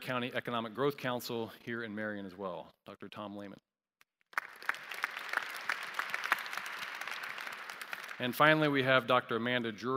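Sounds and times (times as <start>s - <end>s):
speech: 0.1s - 3.7s, 8.2s - 9.9s
audience applause: 4.4s - 8.8s.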